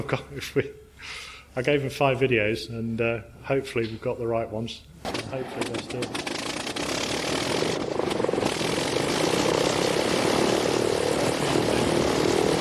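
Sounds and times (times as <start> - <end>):
speech: 0.0 - 6.2
1912 rotary-engined monoplane propeller engine roaring: 5.7 - 12.5.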